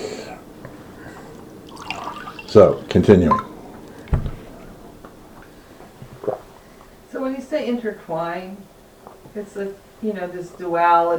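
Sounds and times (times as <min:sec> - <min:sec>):
water pouring into a glass: 0:01.1 - 0:04.3
speech: 0:02.5 - 0:03.5, 0:07.8 - 0:08.7, 0:09.3 - 0:11.1.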